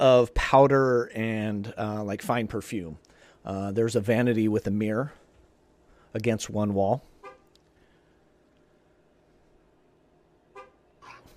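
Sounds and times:
speech: 0.0 - 5.2, 6.1 - 7.1
car horn honking outside: 7.2 - 7.5, 10.5 - 11.3.

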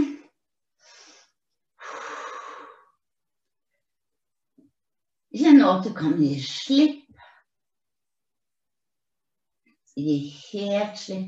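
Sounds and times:
slow breathing during a stretch: 0.8 - 3.0
speech: 5.4 - 7.0, 10.0 - 11.2.

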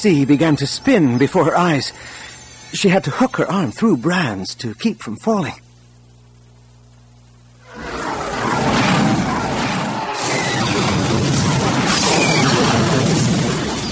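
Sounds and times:
speech: 0.0 - 5.6
proton torpedo explosion blowing a hole in a spherical cluster ship: 7.7 - 13.8.

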